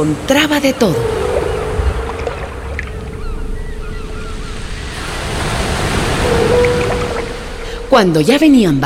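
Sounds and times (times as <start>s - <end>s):
speech: 0.0s - 1.2s, 8.0s - 8.8s
ocean surf: 0.0s - 7.9s
faint wind over the ocean: 0.0s - 8.8s
ocean waves washing around a canoe: 1.0s - 7.9s.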